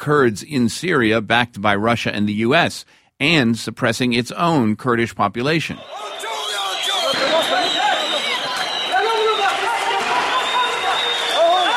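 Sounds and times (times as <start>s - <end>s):
speech: 0.0s - 6.2s
thousands of people shouting and chanting at a rally in Diyarbakir streets: 5.7s - 11.7s.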